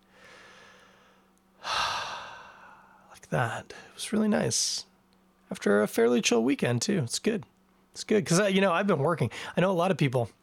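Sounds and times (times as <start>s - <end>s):
slow deliberate breathing: 0.1s - 3.1s
speech: 3.3s - 4.9s, 5.5s - 10.4s.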